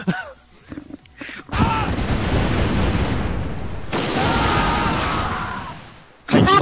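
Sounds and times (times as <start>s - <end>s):
cannon fire sound effect blasts: 1.6s - 6.1s.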